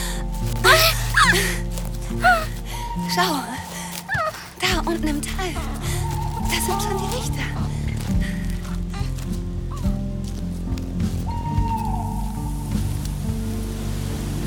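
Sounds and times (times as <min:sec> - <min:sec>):
rain-like hiss: 0:00.0 - 0:14.4
small owl calling at night: 0:00.4 - 0:07.7, 0:11.2 - 0:13.2
speech: 0:03.1 - 0:03.6, 0:04.9 - 0:05.9, 0:06.5 - 0:07.7.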